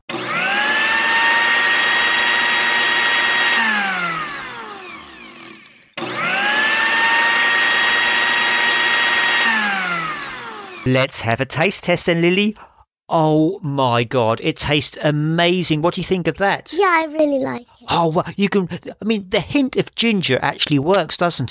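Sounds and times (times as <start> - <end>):
blender blending fruit and yogurt smoothie at high speed: 0.0 - 10.9
speech: 10.9 - 21.4.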